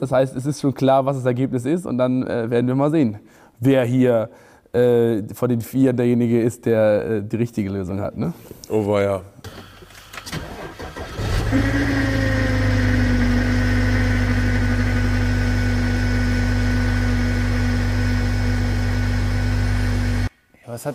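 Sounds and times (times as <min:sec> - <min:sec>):
speech: 0:00.0 - 0:09.7, 0:20.8 - 0:20.9
parked car engine cranking on a cold morning: 0:09.5 - 0:15.5
parked car engine idling with a droning whine on a cold morning: 0:09.5 - 0:20.3.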